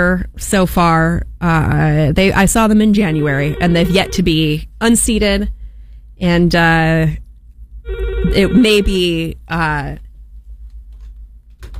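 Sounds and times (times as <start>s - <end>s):
speech: 0.0s - 5.6s, 6.2s - 7.2s, 7.9s - 10.0s
telephone ringing: 3.1s - 4.3s, 7.9s - 9.0s.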